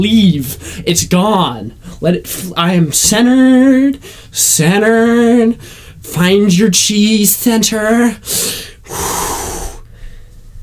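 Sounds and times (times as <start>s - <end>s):
speech: 0.0s - 9.4s
person breathing as a deep breathing exercise: 0.6s - 0.9s, 4.0s - 4.4s, 5.6s - 6.0s, 8.2s - 10.4s
forceful airy exhale as a breathing technique: 8.3s - 10.3s.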